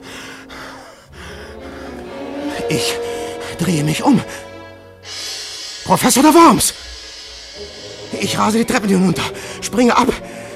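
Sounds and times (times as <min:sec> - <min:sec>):
heavy asthmatic panting: 0:00.0 - 0:10.5
speech: 0:02.7 - 0:04.5, 0:05.9 - 0:06.7, 0:07.6 - 0:10.3.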